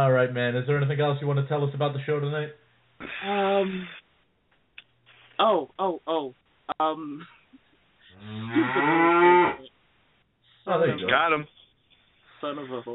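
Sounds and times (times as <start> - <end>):
speech: 0.0 - 4.0, 5.4 - 7.4, 8.2 - 9.7, 10.6 - 11.6, 12.4 - 12.9
cow mooing with a thin telephone-like tone: 8.2 - 9.7.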